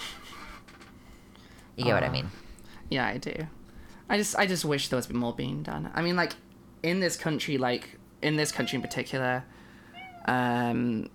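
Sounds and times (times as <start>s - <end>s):
person murmuring: 1.8s - 2.4s
speech: 1.8s - 9.6s, 10.3s - 11.1s
cat meowing: 8.5s - 9.2s, 9.9s - 10.4s.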